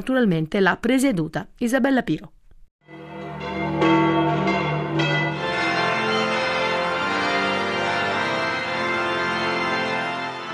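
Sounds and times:
speech: 0:00.0 - 0:02.4
large church bells of a basilica ringing: 0:02.8 - 0:10.5.

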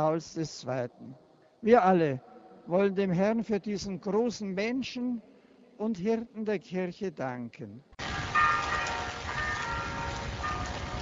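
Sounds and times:
speech: 0:00.0 - 0:07.9
distant church bells ringing at the Auschwitz main camp: 0:08.0 - 0:11.0.

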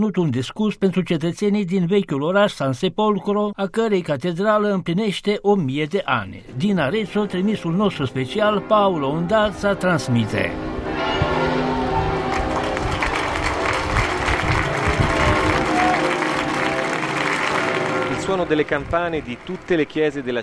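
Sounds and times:
speech: 0:00.0 - 0:10.8, 0:18.3 - 0:20.4
large crowd applauding: 0:11.2 - 0:20.4.

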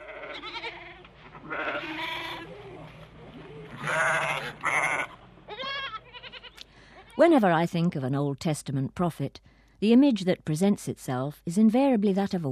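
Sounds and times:
herd of sheep or goats bleating: 0:00.0 - 0:02.9, 0:03.7 - 0:06.6
speech: 0:01.4 - 0:02.6, 0:07.2 - 0:12.4.

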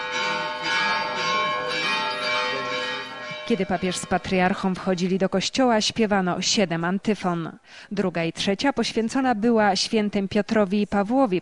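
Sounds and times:
several church bells pealing: 0:00.0 - 0:04.8
speech: 0:03.5 - 0:11.4.

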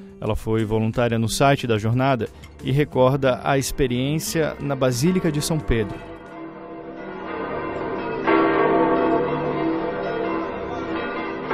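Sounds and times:
speech: 0:00.2 - 0:06.1
church bells ringing: 0:03.8 - 0:11.5.

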